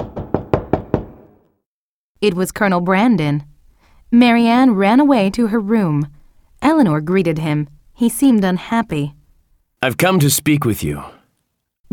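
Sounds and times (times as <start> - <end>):
knocking on a wooden door: 0.0 - 1.3
speech: 2.2 - 3.5, 4.1 - 9.2, 9.8 - 11.2.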